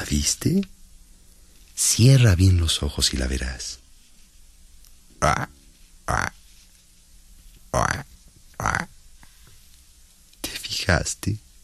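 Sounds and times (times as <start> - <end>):
speech: 0.1 - 0.8, 1.8 - 3.8, 5.2 - 6.4, 7.7 - 8.9, 10.8 - 11.4
frog croaking near water: 5.2 - 6.4, 7.7 - 9.0.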